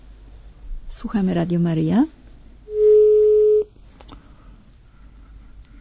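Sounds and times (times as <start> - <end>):
speech: 1.0 - 2.2
telephone busy tone after a dropped call: 2.7 - 3.7.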